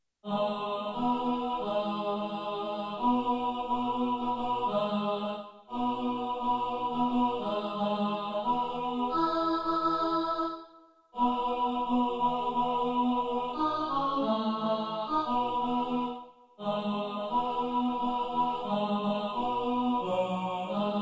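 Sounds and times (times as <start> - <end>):
tenor singing: 0.2 - 10.6, 11.2 - 21.0.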